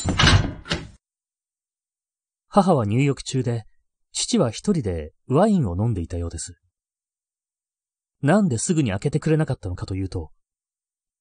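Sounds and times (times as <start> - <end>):
front door closing: 0.0 - 1.0
speech: 2.6 - 6.6, 8.2 - 10.4.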